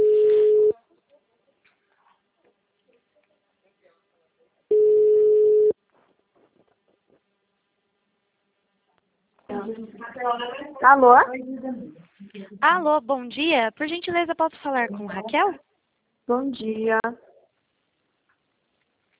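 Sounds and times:
buzzy telephone ringback tones while a dropped call is redialed: 0:00.0 - 0:00.7, 0:04.7 - 0:05.7
speech: 0:10.2 - 0:15.7, 0:16.3 - 0:17.3.

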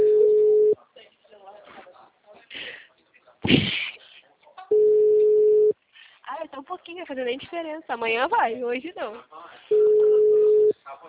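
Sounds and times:
steady low single-pitched telephone call tone while a number is dialed: 0:00.0 - 0:00.8, 0:04.7 - 0:05.7, 0:09.7 - 0:10.7
speech: 0:06.9 - 0:09.9.

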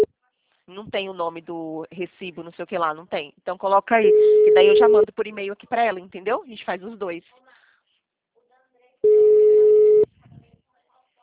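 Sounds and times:
speech: 0:00.7 - 0:07.6
telephone ringback tone from an unanswered call: 0:04.0 - 0:05.1, 0:09.0 - 0:10.1.

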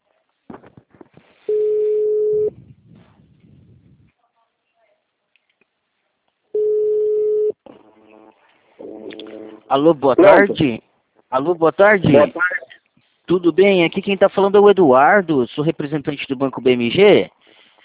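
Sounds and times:
ringback tone of an outgoing phone call: 0:01.5 - 0:02.5, 0:06.6 - 0:07.6
speech: 0:09.7 - 0:12.5, 0:13.3 - 0:17.4.

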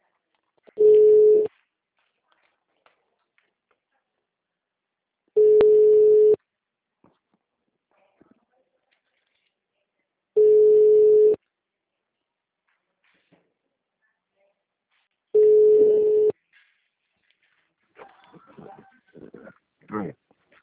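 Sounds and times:
telephone ringback tone on an outbound call: 0:00.8 - 0:01.5, 0:05.4 - 0:06.4, 0:10.4 - 0:11.4, 0:15.4 - 0:16.3.

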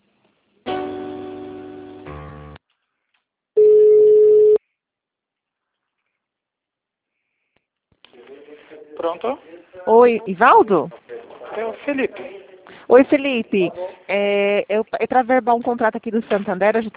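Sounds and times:
long buzzy telephone tone after a dropped call: 0:03.6 - 0:04.6
speech: 0:09.0 - 0:11.0, 0:11.6 - 0:16.9.

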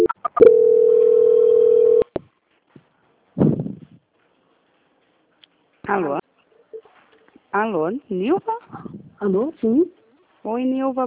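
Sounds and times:
telephone call-transfer tone: 0:00.0 - 0:02.1
speech: 0:07.6 - 0:11.0.

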